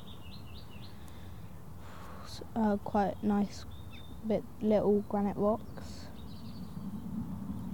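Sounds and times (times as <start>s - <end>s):
low breezy background: 0.0s - 7.7s
small birds cheeping outdoors: 0.0s - 7.7s
speech: 2.4s - 5.9s.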